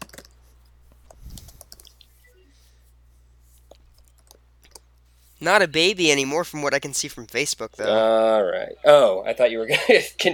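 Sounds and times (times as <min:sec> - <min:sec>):
typing on a computer keyboard: 0:00.0 - 0:00.4, 0:01.1 - 0:02.0, 0:03.7 - 0:04.9
low steady hum: 0:00.0 - 0:10.3
speech: 0:05.4 - 0:10.3
laughter: 0:09.7 - 0:10.3.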